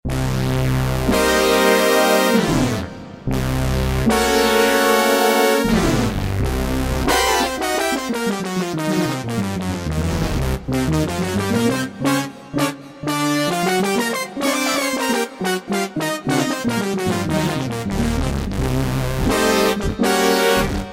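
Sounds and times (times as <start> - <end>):
synth brass from a Kurzweil K2000: 0.1 - 20.9.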